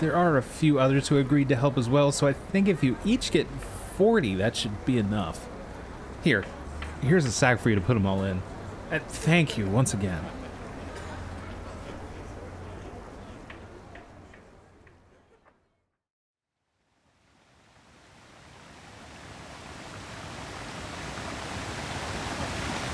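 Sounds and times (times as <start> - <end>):
speech: 0.0 - 5.5, 6.2 - 10.4
rushing waterfall in a video game with a cave behind it: 17.2 - 22.9.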